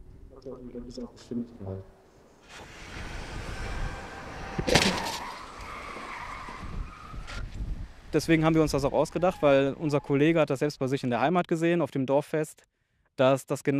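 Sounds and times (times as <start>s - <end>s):
speech: 0.4s - 3.0s, 8.1s - 13.7s
truck crashing into car barrier in a crash test in Münster, Germany: 2.5s - 6.1s.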